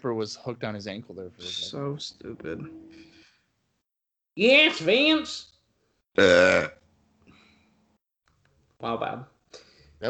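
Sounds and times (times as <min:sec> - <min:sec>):
speech: 0:00.0 - 0:03.1, 0:04.4 - 0:05.5, 0:06.2 - 0:06.8, 0:08.8 - 0:09.3
burp: 0:06.2 - 0:06.9.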